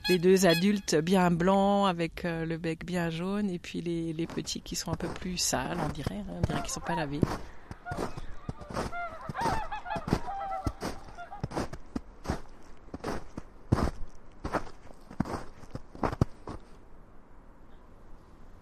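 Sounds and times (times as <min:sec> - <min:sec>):
whooper swans honking: 0:00.0 - 0:00.9, 0:06.4 - 0:11.8
speech: 0:00.1 - 0:09.6
crunching footsteps: 0:04.2 - 0:16.8.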